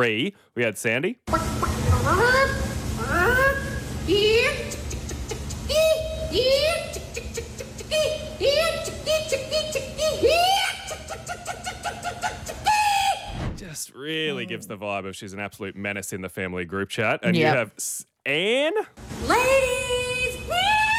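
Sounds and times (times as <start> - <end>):
speech: 0.0 - 2.6, 13.7 - 20.8
faint low hum: 0.0 - 20.9
woman imitating a chicken in a chicken calling contest: 2.0 - 11.1.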